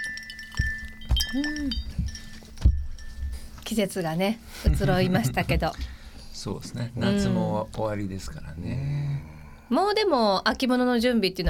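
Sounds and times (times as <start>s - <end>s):
glasses clinking together in a toast: 0.0s - 3.6s
faint hum: 0.0s - 11.4s
speech: 1.3s - 1.9s, 3.7s - 8.9s, 9.7s - 11.4s.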